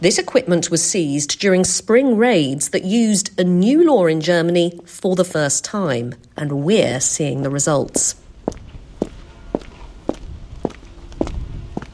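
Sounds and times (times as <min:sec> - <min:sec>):
speech: 0:00.0 - 0:08.2
hard footsteps echoing in a large warehouse: 0:08.0 - 0:11.9.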